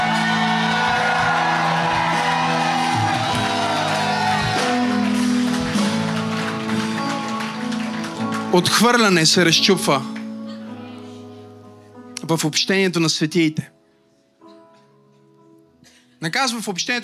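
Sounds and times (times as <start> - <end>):
whoops: 0.0 - 5.3
church audience shouting and crying out: 0.0 - 7.2
speech: 8.5 - 10.2, 12.3 - 13.8, 16.2 - 17.0.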